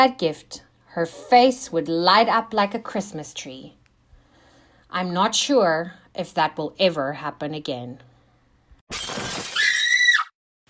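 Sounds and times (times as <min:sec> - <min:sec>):
speech: 0:00.0 - 0:03.8, 0:04.9 - 0:08.1, 0:08.9 - 0:09.4
glass shattering: 0:08.9 - 0:09.8
person screaming in terror: 0:09.5 - 0:10.3.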